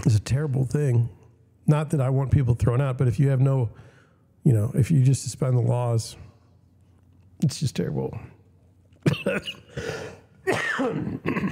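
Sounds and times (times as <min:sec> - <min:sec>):
speech: 0:00.1 - 0:06.2, 0:07.4 - 0:08.3, 0:09.1 - 0:10.2, 0:10.8 - 0:11.4
person coughing harshly with throaty clearing: 0:09.0 - 0:11.4.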